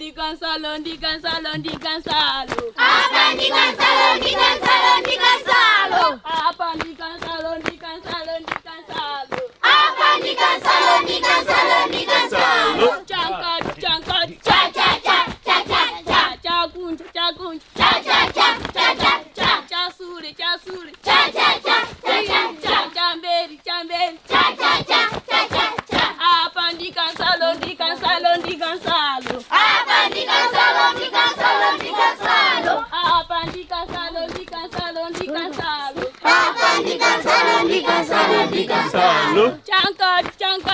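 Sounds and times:
speech: 0.1s - 8.1s
sharp claps or stamps: 1.3s - 2.7s, 4.2s - 5.2s, 6.3s - 9.6s, 13.1s - 16.2s, 17.8s - 19.9s, 24.3s - 29.4s, 30.1s - 36.2s, 39.8s - 40.7s
large group of schoolgirls chanting a war cry: 2.5s - 39.7s.

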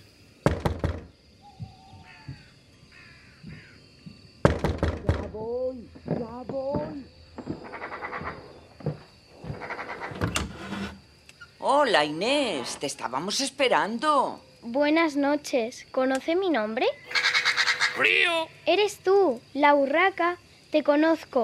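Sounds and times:
firm knocking on a wooden door: 0.4s - 2.5s, 3.4s - 9.6s
speech: 5.5s - 7.1s, 11.7s - 17.3s, 18.0s - 21.4s
squeaky chirping vocal sounds: 16.9s - 18.5s.

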